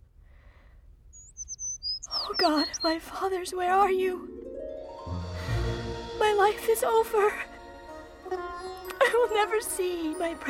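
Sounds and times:
small caged bird chirping: 1.1s - 3.2s
speech: 2.4s - 4.4s, 6.3s - 7.5s, 8.3s - 10.4s.

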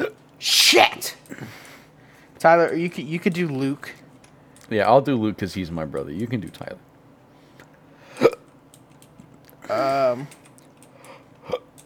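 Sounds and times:
speech: 2.4s - 4.0s, 4.7s - 6.9s, 9.8s - 10.4s
short throaty burp: 9.6s - 10.3s, 11.4s - 11.7s.

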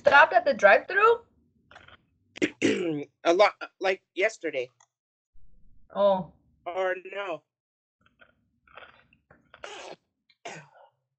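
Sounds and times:
speech: 0.1s - 1.3s, 2.4s - 4.8s, 5.9s - 7.5s
person sneezing: 9.6s - 10.7s.

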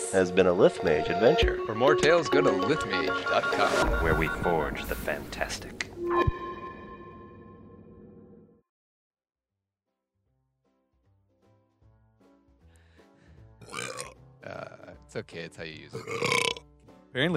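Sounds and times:
speech: 0.1s - 6.4s, 15.1s - 17.3s
loud rumbling burp: 13.6s - 14.9s, 16.0s - 16.6s.

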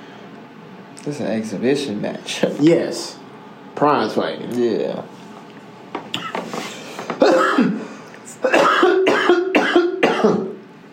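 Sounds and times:
speech: 1.0s - 3.2s, 3.8s - 5.2s
smoker's harsh raspy coughing fit: 7.1s - 10.6s.

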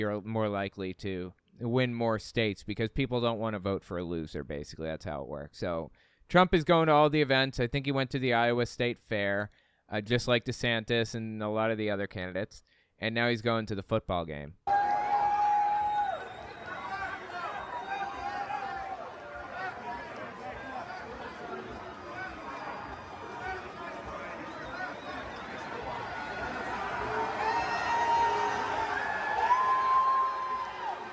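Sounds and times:
speech: 0.0s - 14.7s
high-pitched voice whooping a drawn-out woo: 14.7s - 20.0s, 22.0s - 31.1s
large crowd booing and chattering: 14.7s - 31.1s.

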